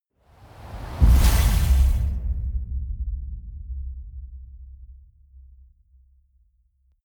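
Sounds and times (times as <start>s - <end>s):
wind gust hit: 0.3s - 2.7s.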